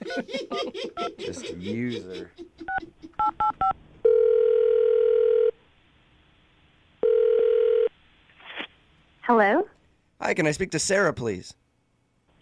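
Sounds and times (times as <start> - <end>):
laughter: 0.0 - 3.2
speech: 0.1 - 0.6, 1.3 - 2.4, 10.3 - 11.6
telephone dialing beeps: 3.2 - 5.5, 7.0 - 7.9.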